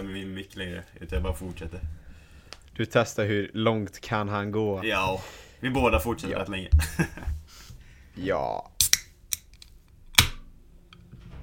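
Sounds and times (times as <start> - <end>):
speech: 0.0 - 2.1, 2.8 - 7.4, 8.2 - 8.7
laughter: 6.8 - 7.4
drink can being opened with a sharp crack: 8.8 - 10.4.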